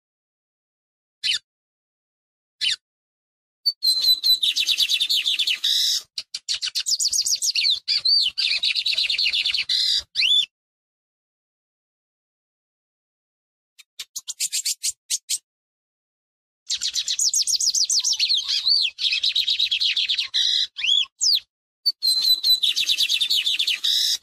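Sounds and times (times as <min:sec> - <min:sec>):
lined seedeater twittering song: 0:03.7 - 0:10.5, 0:13.8 - 0:15.4, 0:16.7 - 0:24.2.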